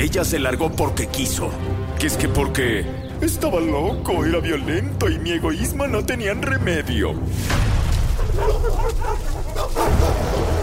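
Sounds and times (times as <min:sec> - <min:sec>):
speech: 0:00.0 - 0:07.7, 0:08.4 - 0:10.0
pack of dogs barking sharply through a village: 0:08.0 - 0:10.6.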